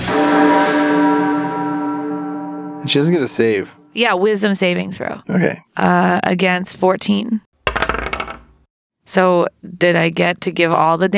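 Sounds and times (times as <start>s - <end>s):
church bell tolling: 0.1s - 4.1s
speech: 2.9s - 7.5s, 9.1s - 11.1s.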